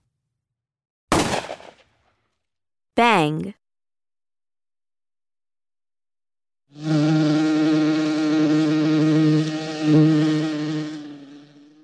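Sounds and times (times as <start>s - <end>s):
speech: 3.0s - 3.6s
low harmonically rich buzzing: 6.8s - 11.8s.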